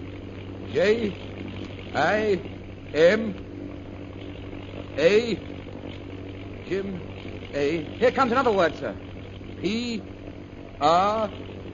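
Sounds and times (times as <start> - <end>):
propeller airplane engine droning in flight: 0.0 - 11.7
voice-like bursts: 0.7 - 1.3, 1.9 - 3.4, 4.9 - 5.5, 6.7 - 9.0, 9.6 - 10.1, 10.8 - 11.4
speech: 0.7 - 3.5, 5.0 - 5.5, 6.7 - 10.1, 10.8 - 11.4.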